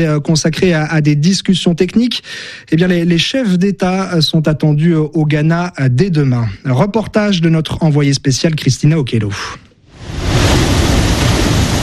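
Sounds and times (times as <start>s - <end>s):
speech: 0.0s - 10.6s
surf breaking on shore at a castle in Ghana: 9.9s - 11.8s.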